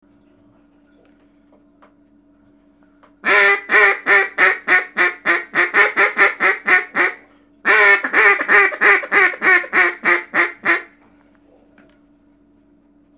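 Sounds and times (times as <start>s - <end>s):
mallard greeting call: 3.2s - 10.9s.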